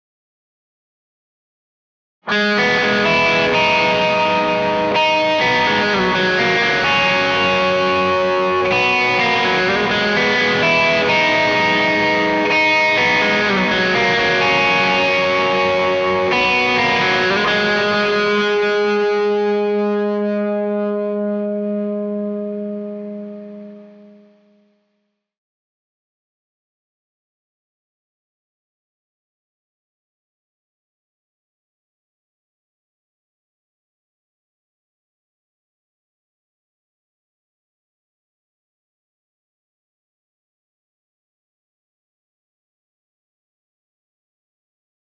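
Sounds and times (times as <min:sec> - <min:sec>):
guitar in C: 0:02.2 - 0:25.0.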